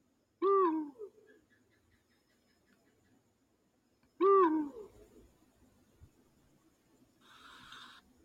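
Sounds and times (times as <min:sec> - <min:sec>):
owl hooting: 0:00.4 - 0:03.0, 0:04.2 - 0:05.3, 0:07.2 - 0:08.1.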